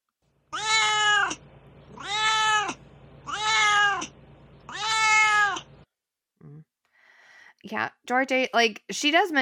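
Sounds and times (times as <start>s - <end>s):
pet cat meowing: 0.5s - 5.7s
speech: 7.7s - 9.4s.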